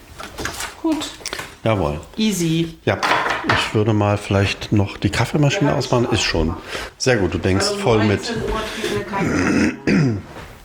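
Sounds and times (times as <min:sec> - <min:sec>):
speech: 0:00.8 - 0:10.1
person clearing throat: 0:09.2 - 0:10.4.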